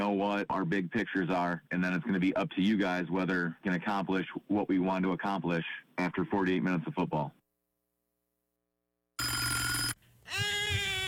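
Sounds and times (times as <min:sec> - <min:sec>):
speech: 0:00.0 - 0:07.4
telephone ringing: 0:09.2 - 0:10.0.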